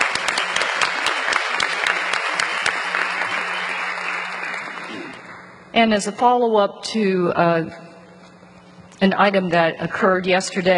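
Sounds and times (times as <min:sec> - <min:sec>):
crowd clapping: 0:00.0 - 0:05.6
speech: 0:05.8 - 0:07.8, 0:09.0 - 0:10.7.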